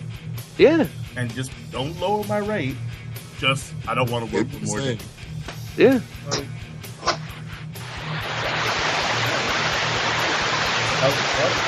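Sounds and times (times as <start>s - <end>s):
speech: 0.6s - 5.2s, 5.8s - 6.6s
shower water running: 7.8s - 11.6s.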